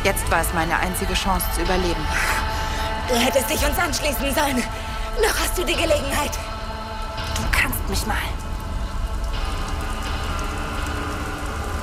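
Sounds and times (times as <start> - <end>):
steady rain pattering on a hard surface: 0.0 - 11.8
speech: 0.1 - 2.5, 3.1 - 6.5, 7.6 - 8.4.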